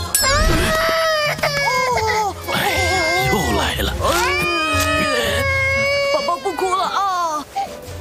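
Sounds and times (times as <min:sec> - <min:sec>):
baby boy crying: 0:00.2 - 0:07.5.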